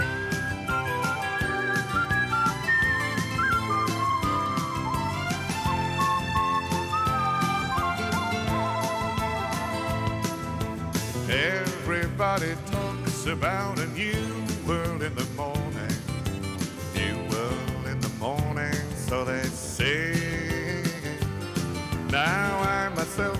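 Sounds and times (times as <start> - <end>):
whistled melody: 0.0 - 12.5
full band backing music: 0.0 - 23.3
speech: 12.4 - 15.6.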